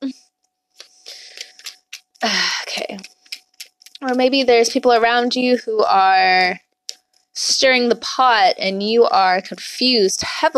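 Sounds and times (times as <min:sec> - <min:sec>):
tarot cards being shuffled: 0:00.8 - 0:04.6
speech: 0:04.0 - 0:06.6, 0:07.4 - 0:10.5.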